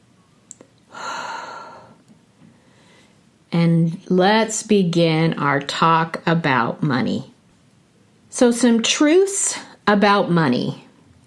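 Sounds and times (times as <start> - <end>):
single deep breath drawn in: 0.9 - 3.2
speech: 3.5 - 7.3, 8.4 - 10.8.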